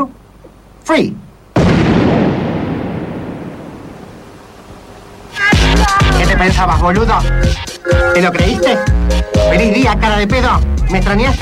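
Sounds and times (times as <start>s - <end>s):
speech: 0.9s - 1.2s, 6.4s - 11.4s
single loud gunshot blast: 1.6s - 4.2s
long booming echo of gunshot: 1.6s - 4.4s.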